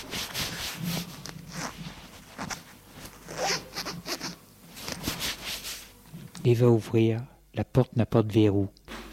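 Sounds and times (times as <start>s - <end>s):
zip-like scrapes: 0.0s - 5.9s
trousers picked up from the floor and pulled on, fabric rustling and rubbing: 0.0s - 6.0s
speech: 6.4s - 8.8s.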